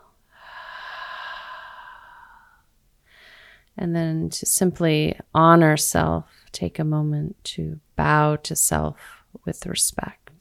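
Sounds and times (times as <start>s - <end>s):
deep breath exhale during a guided breathing exercise: 0.3s - 3.6s
speech: 3.8s - 10.4s.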